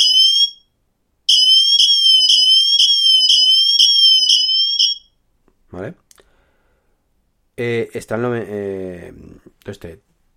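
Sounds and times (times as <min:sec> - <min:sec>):
smartwatch emergency siren from its speaker: 0:00.0 - 0:00.6, 0:01.3 - 0:05.1
speech: 0:07.6 - 0:10.1.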